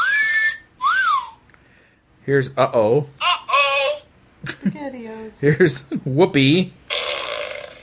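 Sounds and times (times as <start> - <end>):
whistle sound effect tones: 0.0 - 1.4
speech: 2.3 - 3.2, 4.4 - 6.8.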